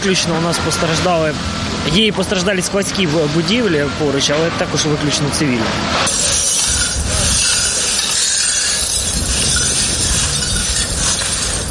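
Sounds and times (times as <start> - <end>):
speech: 0.0 - 6.4
broken glass scraping and crunching at an explosion-damaged kindergarten: 6.0 - 11.7
glass shards clinking and rattling: 6.0 - 11.7.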